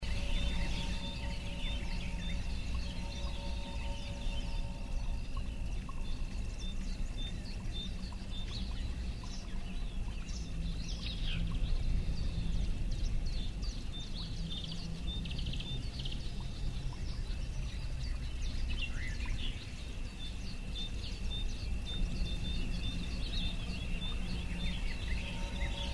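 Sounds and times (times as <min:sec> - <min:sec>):
outdoor ambience at a castle: 0:00.0 - 0:25.9.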